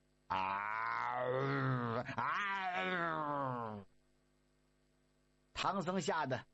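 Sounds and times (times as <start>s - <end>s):
speech: 0.3s - 0.8s, 5.6s - 6.5s
human voice imitating tigers growling: 0.3s - 3.9s.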